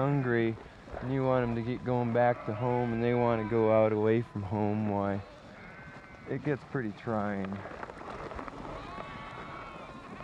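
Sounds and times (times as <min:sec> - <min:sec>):
speech: 0:00.0 - 0:05.4, 0:06.3 - 0:07.9
sheep from a herd bleating: 0:02.1 - 0:06.4, 0:08.7 - 0:10.2.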